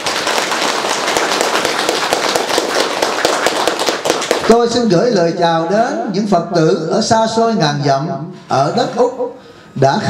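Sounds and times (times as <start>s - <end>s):
audience applauding at a Buddhist gathering: 0.0s - 4.6s
speech: 4.5s - 10.0s.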